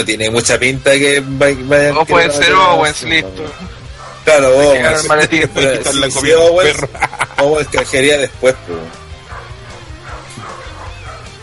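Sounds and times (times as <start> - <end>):
speech: 0.0 - 9.0
faint voices murmuring: 0.7 - 11.4
dog barking in yappy bursts: 3.9 - 4.3, 8.7 - 11.4
laughter: 4.7 - 8.2.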